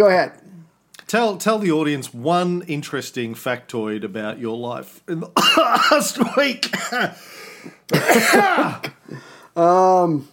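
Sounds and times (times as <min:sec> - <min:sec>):
speech: 0:00.0 - 0:00.4, 0:01.1 - 0:10.3
harsh raspy coughing: 0:05.4 - 0:09.3.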